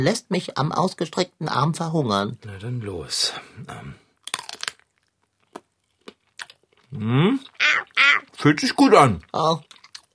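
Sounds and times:
speech: 0.0s - 4.0s, 6.9s - 10.1s
biting into a sausage: 4.2s - 7.6s
chewing sounds: 4.2s - 10.1s.

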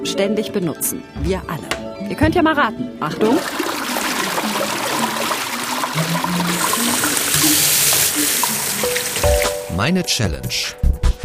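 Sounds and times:
speech: 0.0s - 3.8s, 6.0s - 7.7s, 9.8s - 10.8s
water pouring into a vessel: 3.2s - 9.6s.

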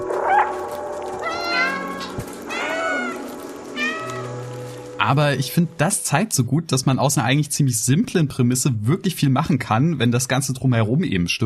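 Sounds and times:
cat meowing from a video game: 0.3s - 4.6s
speech: 5.0s - 11.4s.

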